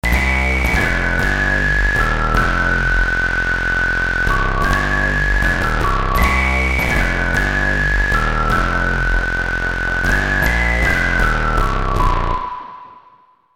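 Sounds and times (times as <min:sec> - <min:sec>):
synth bass whistle on a Roland JD800 synthesizer: 0:00.0 - 0:13.5.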